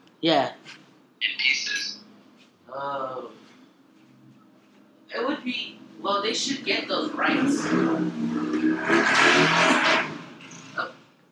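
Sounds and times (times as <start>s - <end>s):
speech: 0.2s - 1.5s, 2.8s - 3.4s, 5.1s - 10.1s
motorcycle gang roaring past: 5.4s - 11.1s.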